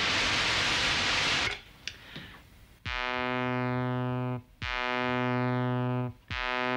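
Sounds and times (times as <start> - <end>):
synthesized white noise hiss: 0.0 - 6.7
sustained buzzy electronic tones: 2.8 - 6.7.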